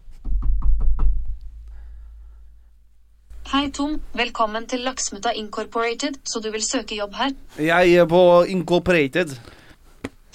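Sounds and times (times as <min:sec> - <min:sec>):
quiet room hum: 0:00.0 - 0:10.3
quick knocks on a door: 0:00.2 - 0:01.3
speech: 0:03.5 - 0:09.6.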